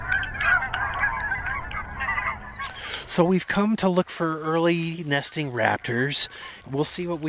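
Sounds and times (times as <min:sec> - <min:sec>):
large flock of geese honking on a lake: 0:00.0 - 0:07.2
speech: 0:03.1 - 0:07.2.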